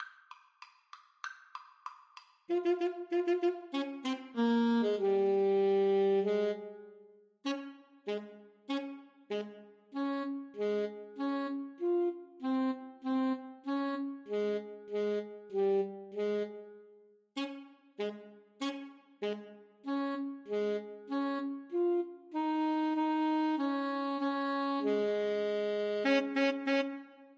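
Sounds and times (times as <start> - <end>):
alto saxophone duet playing a march: 2.5 - 27.3.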